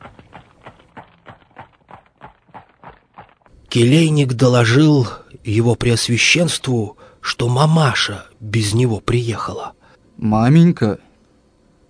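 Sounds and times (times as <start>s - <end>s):
horse hooves clip-clopping at a trotting pace pulling a carriage: 0.0s - 3.6s
speech: 3.7s - 11.1s.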